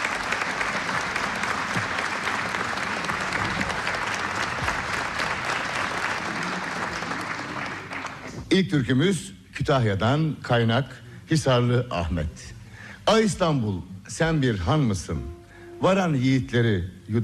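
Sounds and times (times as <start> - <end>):
audience applause for a choir at a folk song concert: 0.0 - 8.4
speech: 8.5 - 17.2.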